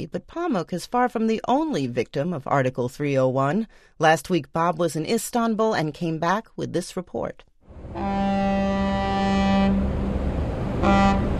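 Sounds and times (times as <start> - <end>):
speech: 0.0 - 8.2
water rumbling under a ferry crossing the Bosphorus: 7.7 - 11.3
deep ferry horn blasts on the Bosphorus in Istanbul: 7.8 - 11.3
steady low rumble of ferry engine: 8.9 - 11.3.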